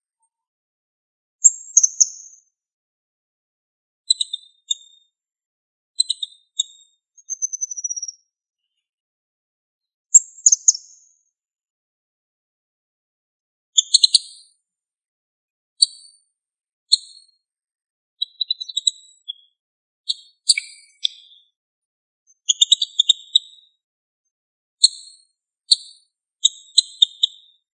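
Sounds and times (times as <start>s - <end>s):
bird chirping and twittering: 1.4s - 2.4s, 4.1s - 5.0s, 6.0s - 8.2s, 10.1s - 11.1s, 18.2s - 21.5s, 22.3s - 23.7s, 25.7s - 27.6s.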